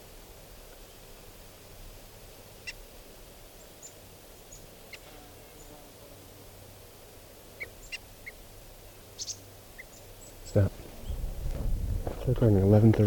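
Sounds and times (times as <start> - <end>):
low steady hum: 0.0 - 13.0
decoy birds giving short high alarm calls: 3.8 - 5.7, 7.6 - 8.4, 9.1 - 11.3
speech: 10.6 - 10.8, 12.3 - 13.0.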